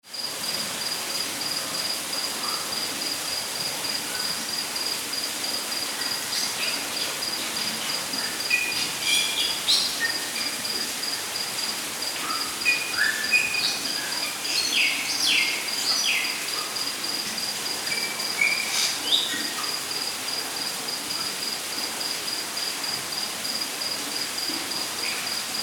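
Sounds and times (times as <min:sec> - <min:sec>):
rainforest ambience: 0:00.0 - 0:25.6.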